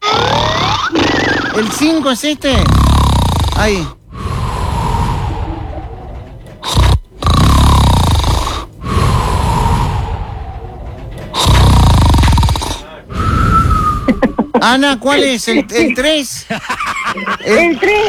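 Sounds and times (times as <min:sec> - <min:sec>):
loud heavy snoring with harsh rattle: 0:00.0 - 0:14.4
speech: 0:01.6 - 0:02.9, 0:03.6 - 0:04.0, 0:14.1 - 0:18.0
laughter: 0:05.1 - 0:06.7, 0:14.0 - 0:18.0.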